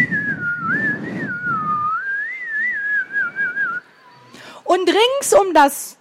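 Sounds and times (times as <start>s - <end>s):
children whistling along to a wavering tune: 0.0s - 4.3s
speech: 4.7s - 6.0s.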